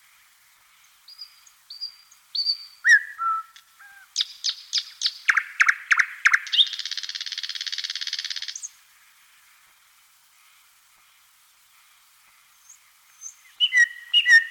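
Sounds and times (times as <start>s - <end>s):
thrush nightingale Luscinia luscinia singing: 0.5s - 8.9s, 12.5s - 14.4s.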